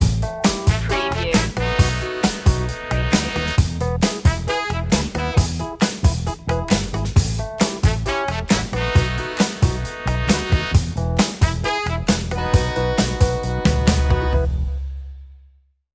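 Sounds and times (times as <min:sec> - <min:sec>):
easy groove music: 0:00.0 - 0:15.0.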